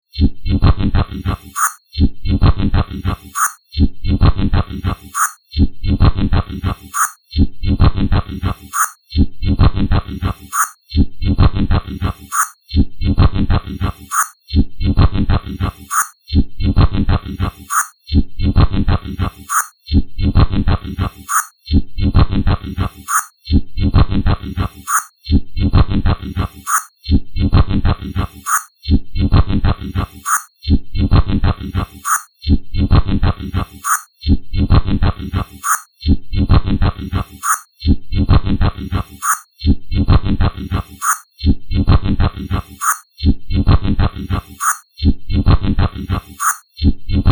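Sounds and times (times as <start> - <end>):
alien science fiction telemetry signal blips: 0.1 - 47.2.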